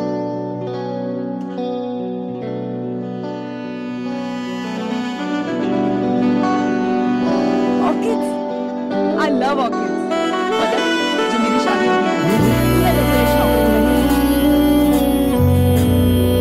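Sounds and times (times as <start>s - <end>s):
full arrangement of sustained tones drenched in echo and chorus effects: 0.0s - 16.3s
man singing a Hindi film song: 12.2s - 16.3s.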